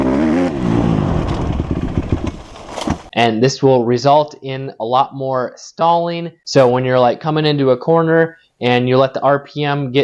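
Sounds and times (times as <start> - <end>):
dirt bike engine revving up and down: 0.0 - 3.1
speech: 3.2 - 10.0.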